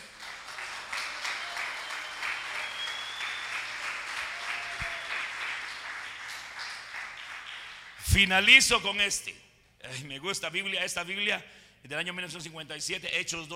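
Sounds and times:
large crowd applauding: 0.0 - 8.1
speech: 8.1 - 13.5.

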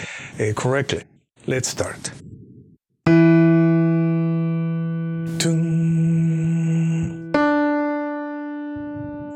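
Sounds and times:
speech: 0.4 - 2.3, 5.4 - 5.8
sustained single keyboard notes: 3.0 - 9.3.

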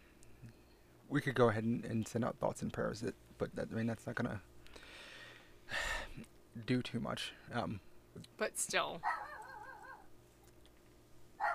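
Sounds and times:
speech: 1.1 - 4.5, 6.2 - 9.2
dog whining: 9.0 - 10.1, 11.4 - 11.5.

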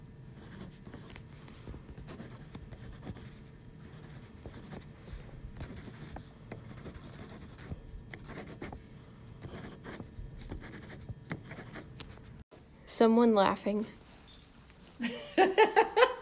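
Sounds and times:
pencil writing on paper: 1.9 - 12.3
speech: 13.0 - 14.0
laughter: 15.0 - 16.2.

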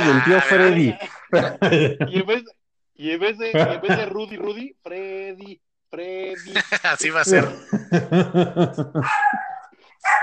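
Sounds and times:
laughter: 0.0 - 2.6, 3.4 - 4.6, 6.4 - 9.2
speech: 0.1 - 9.4
female dog barking: 9.0 - 10.2.

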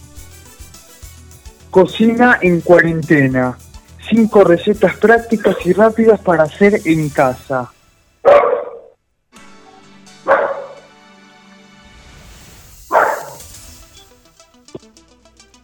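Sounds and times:
speech: 1.7 - 8.4
dog barking: 5.4 - 5.9, 8.3 - 9.0, 9.7 - 10.9, 12.9 - 13.5.

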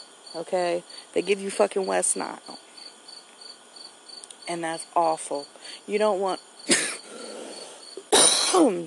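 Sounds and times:
speech: 0.3 - 2.7, 4.5 - 6.9, 8.5 - 8.8
harsh coughs ending in a strained voiced rasp: 6.7 - 7.1, 8.1 - 8.8.

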